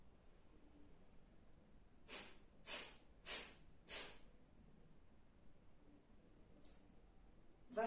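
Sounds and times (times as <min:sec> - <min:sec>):
forceful nasal exhalations in a breathing exercise: 0:02.1 - 0:04.2.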